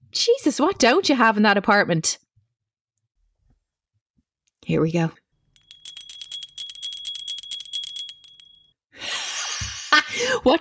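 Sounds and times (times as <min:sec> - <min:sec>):
speech: 0:00.1 - 0:02.2, 0:04.7 - 0:05.2
small bell ringing rapidly: 0:05.6 - 0:08.7.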